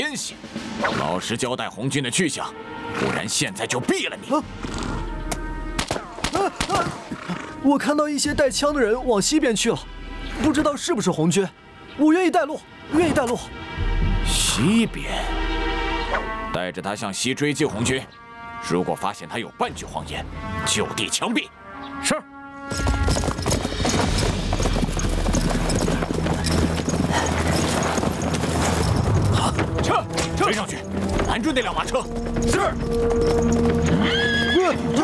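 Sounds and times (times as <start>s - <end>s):
speech: 0.0s - 5.0s, 6.3s - 13.6s, 14.3s - 15.4s, 16.1s - 23.0s, 30.5s - 35.0s
horse hooves clopping in a rapid continuous rhythm: 4.5s - 7.6s, 22.7s - 35.0s
carriage horses neighing loudly: 5.9s - 7.9s, 22.7s - 35.0s.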